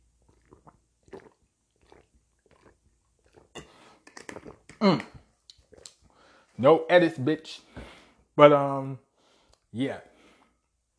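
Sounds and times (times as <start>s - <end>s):
mouth clicks and swallowing gulps of a drink: 0.0s - 6.2s
sipping noise: 0.3s - 6.1s
speech: 4.8s - 5.1s, 6.6s - 7.7s, 8.4s - 9.0s, 9.7s - 10.1s.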